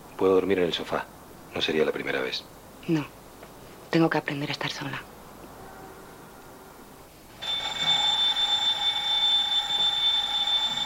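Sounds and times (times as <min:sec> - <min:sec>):
speech: 0:00.2 - 0:03.2, 0:03.9 - 0:05.1
alarm clock ringing with a shrill electronic tone: 0:07.3 - 0:10.8.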